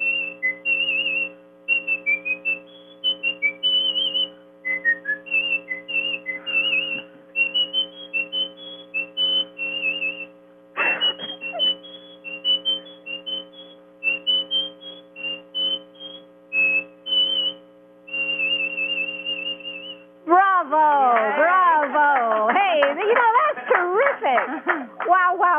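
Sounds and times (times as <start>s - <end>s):
person whistling a lively tune: 0.0s - 20.0s
faint sustained hum: 0.0s - 25.5s
laughter: 10.8s - 11.8s, 22.4s - 25.1s.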